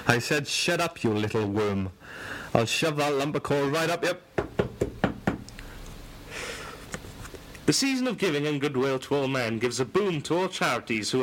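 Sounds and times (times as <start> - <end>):
faint low hiss: 0.0 - 11.2
speech: 0.1 - 4.3, 7.7 - 11.2
knocking on a door: 4.4 - 5.5.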